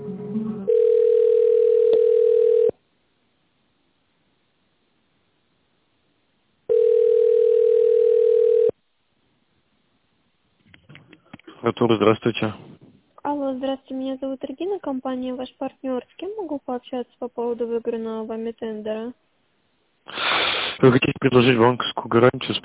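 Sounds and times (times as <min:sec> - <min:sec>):
telephone ringing tone while a call is transferred: 0:00.6 - 0:02.8, 0:06.7 - 0:08.8
speech: 0:11.7 - 0:12.7, 0:13.7 - 0:19.2, 0:20.0 - 0:22.6.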